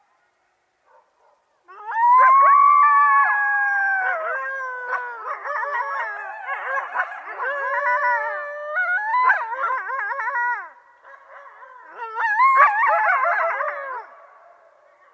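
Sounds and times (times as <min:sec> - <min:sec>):
coyote howling: 0:01.7 - 0:10.8, 0:11.5 - 0:14.4
coyotes warbling and yipping together: 0:04.0 - 0:15.1.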